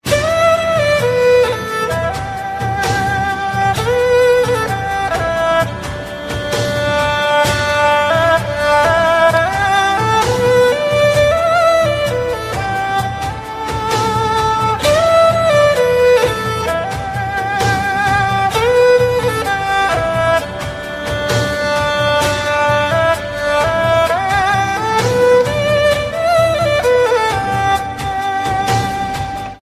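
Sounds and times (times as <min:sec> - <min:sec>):
Chinese instrumental music: 0:00.0 - 0:29.6.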